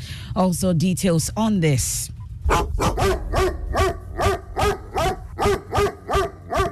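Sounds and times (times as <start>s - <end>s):
speech: 0.4s - 4.0s
dog barking: 2.5s - 6.7s.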